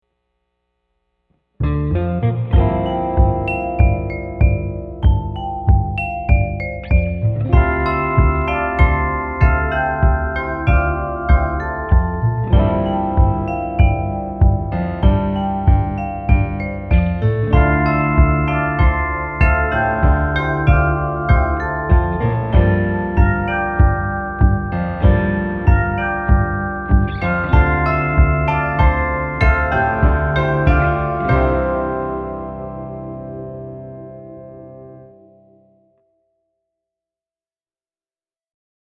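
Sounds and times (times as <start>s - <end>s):
kick drum: 2.6s - 31.9s.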